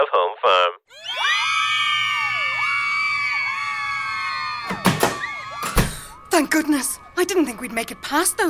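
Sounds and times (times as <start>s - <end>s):
speech: 0.0s - 1.0s, 6.4s - 8.4s
crowd of women screaming and shrieking shoving past security: 0.9s - 7.2s.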